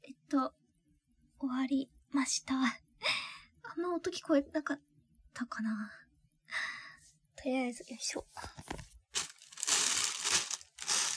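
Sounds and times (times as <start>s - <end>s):
speech: 0.3s - 0.6s, 1.4s - 3.2s, 3.8s - 6.0s, 7.4s - 8.7s
plastic bag crinkling as it is handled: 9.2s - 11.1s.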